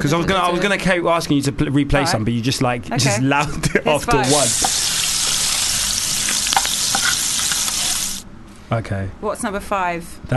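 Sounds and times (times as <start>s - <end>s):
speech: 0.0s - 5.0s, 8.7s - 10.3s
halloumi cheese frying in a pan with sizzling oil: 4.2s - 8.2s.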